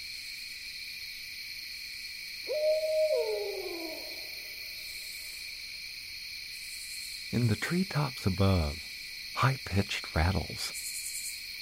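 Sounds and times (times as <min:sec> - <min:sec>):
chorus of insects buzzing: 0:00.0 - 0:11.6
barred owl hooting near a campground at dusk: 0:02.5 - 0:04.7
speech: 0:07.3 - 0:10.8.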